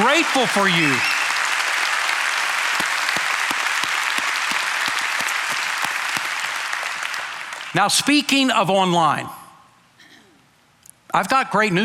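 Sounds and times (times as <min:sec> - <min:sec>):
sharp individual claps: 0:00.0 - 0:07.8
sizable crowd applauding: 0:00.0 - 0:08.1
speech: 0:00.2 - 0:01.2, 0:07.7 - 0:09.4, 0:11.1 - 0:11.8.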